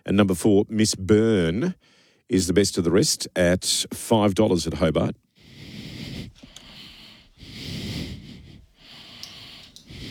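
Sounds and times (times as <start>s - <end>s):
speech: 0.0s - 5.2s
heavy breathing into microphone: 5.4s - 10.0s.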